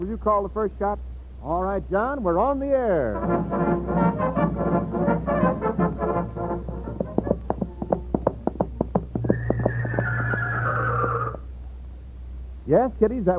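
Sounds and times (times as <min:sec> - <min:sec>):
speech: 0:00.0 - 0:06.7, 0:12.7 - 0:13.3
low steady hum: 0:00.0 - 0:13.3
sharp clip-clop hoofbeats: 0:05.3 - 0:11.5
horse whinny sound effect for a radio horse opera: 0:09.1 - 0:11.5
high whistling tone: 0:09.2 - 0:11.4.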